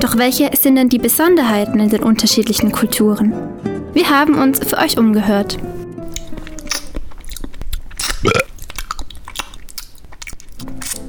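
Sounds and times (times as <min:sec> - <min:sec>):
speech: 0:00.0 - 0:05.8
mouth smacking while eating: 0:06.0 - 0:11.0
slurping: 0:06.1 - 0:11.0
loud drawn-out burp: 0:08.2 - 0:08.6.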